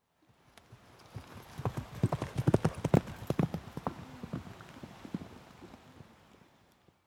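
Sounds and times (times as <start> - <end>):
horse galloping on grass: 0.6 - 6.2.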